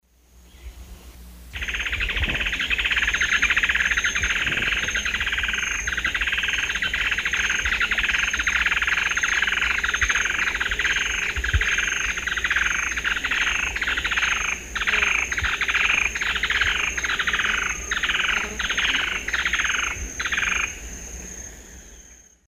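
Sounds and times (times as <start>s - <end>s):
Thripophaga fusciceps group song in the Eastern Lowlands of South America: 0.4s - 0.9s, 1.6s - 20.8s.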